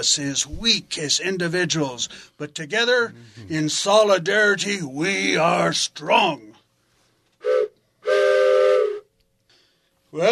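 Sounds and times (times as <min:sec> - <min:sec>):
speech: 0:00.0 - 0:06.5
steam train whistle: 0:07.4 - 0:09.1.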